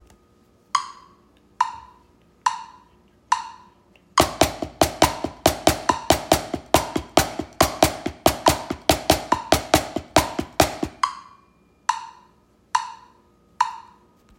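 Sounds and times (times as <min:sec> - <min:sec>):
drums played with a single hand: 0:04.2 - 0:11.1.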